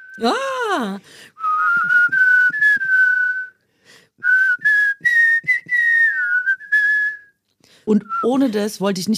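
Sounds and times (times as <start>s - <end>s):
two people whistling a tune in unison: 0.0s - 0.4s, 1.4s - 3.6s, 4.2s - 7.4s
speech: 0.2s - 2.0s, 7.9s - 9.1s.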